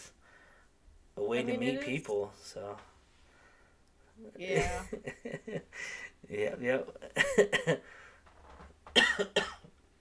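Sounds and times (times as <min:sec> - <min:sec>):
quiet room hum: 0:00.0 - 0:09.9
speech: 0:01.2 - 0:02.9, 0:04.2 - 0:08.0, 0:09.0 - 0:09.6
person coughing: 0:07.2 - 0:07.8, 0:09.0 - 0:09.7.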